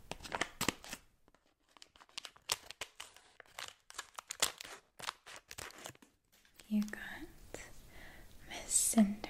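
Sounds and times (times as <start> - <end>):
plastic blind bag crinkling: 0.2 - 6.8
speech: 6.7 - 7.1, 9.0 - 9.2.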